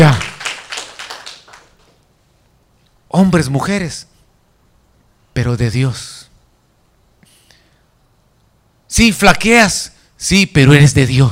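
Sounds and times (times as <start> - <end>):
speech: 0.0 - 0.3, 3.2 - 4.1, 5.4 - 6.2, 8.9 - 11.3
audience clapping hands: 0.0 - 2.0.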